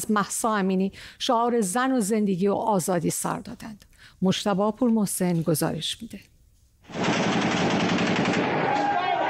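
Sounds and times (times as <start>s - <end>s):
speech: 0.0s - 6.3s
security forces firing live rounds at protesters during a general strike: 6.9s - 9.2s
indistinct shouting voices at a street protest: 8.6s - 9.2s.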